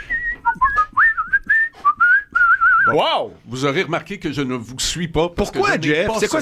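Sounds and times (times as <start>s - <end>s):
melodic whistling by a skilled whistler: 0.0s - 2.9s
speech: 2.9s - 6.4s.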